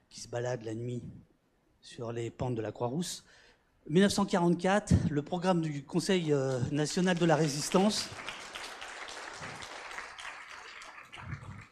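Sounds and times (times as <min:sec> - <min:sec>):
speech: 0:00.2 - 0:08.4
audience applauding: 0:06.5 - 0:11.6.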